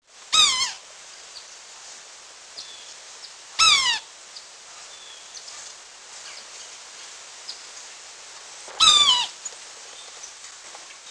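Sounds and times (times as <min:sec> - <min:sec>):
quiet background hiss: 0:00.0 - 0:11.0
Yellow-bellied sapsucker mewing calls: 0:00.3 - 0:00.8, 0:03.6 - 0:04.1, 0:08.7 - 0:09.6.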